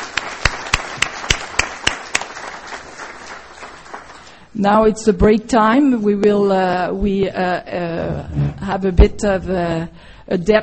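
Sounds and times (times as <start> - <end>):
conference audience applauding a panel: 0.0 - 4.4
speech: 4.6 - 10.6.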